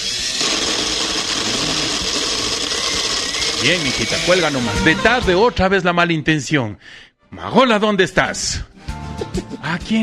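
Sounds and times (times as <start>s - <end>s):
electric blender running: 0.0s - 5.0s
speech: 3.6s - 8.7s, 9.4s - 10.0s.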